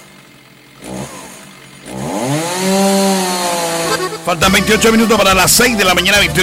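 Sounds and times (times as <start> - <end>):
chainsaw sputtering and revving: 0.0 - 6.4
speech: 4.3 - 6.4.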